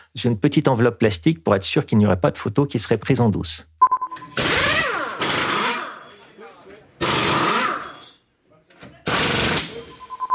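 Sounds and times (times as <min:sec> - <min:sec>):
speech: 0:00.2 - 0:03.7
pneumatic wheel guns during Formula 1 tyre-change practice: 0:04.4 - 0:06.1, 0:07.0 - 0:08.2, 0:09.1 - 0:09.8.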